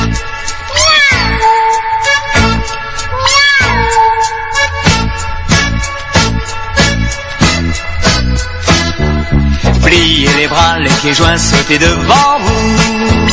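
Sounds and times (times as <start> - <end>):
bouncy children's dance music with a thumping beat: 0.0 - 13.3
cartoonish cat meows: 0.7 - 1.7, 3.2 - 4.3
speech: 11.0 - 13.3.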